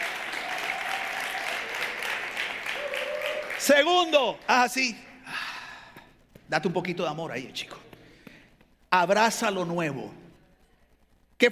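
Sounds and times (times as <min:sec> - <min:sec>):
audience applauding in a large room: 0:00.0 - 0:05.0
speech: 0:03.6 - 0:05.1, 0:06.5 - 0:07.8, 0:08.9 - 0:10.2.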